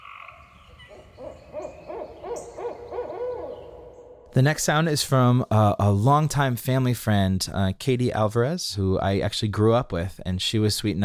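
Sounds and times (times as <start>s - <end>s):
owl hooting: 0.0s - 4.4s
speech: 4.4s - 11.0s.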